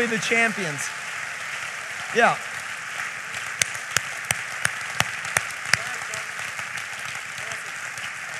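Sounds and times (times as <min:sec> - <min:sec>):
speech: 0:00.0 - 0:01.1, 0:02.1 - 0:02.5
audience applauding: 0:00.0 - 0:08.3
sharper clap in a regular beat: 0:03.6 - 0:08.1.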